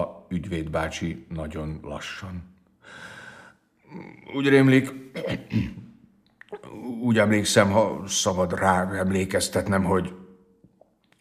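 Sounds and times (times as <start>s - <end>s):
speech: 0.0s - 3.2s, 3.9s - 5.9s, 6.6s - 10.2s
person coughing: 5.1s - 5.9s
throat clearing: 5.1s - 6.8s.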